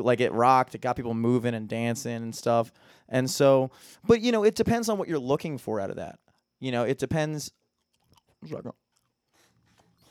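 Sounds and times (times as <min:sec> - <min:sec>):
speech: 0:00.0 - 0:07.6, 0:08.4 - 0:08.8
loud wet gum chewing with smacking: 0:07.6 - 0:10.0.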